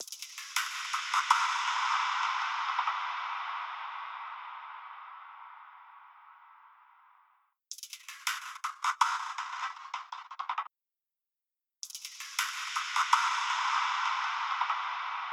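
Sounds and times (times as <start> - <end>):
glitch percussion: 0.0 - 3.1, 7.7 - 10.7, 11.8 - 15.2.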